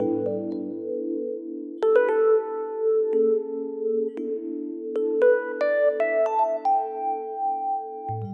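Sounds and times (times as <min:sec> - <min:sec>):
fusion electric piano music: 0:00.0 - 0:08.3.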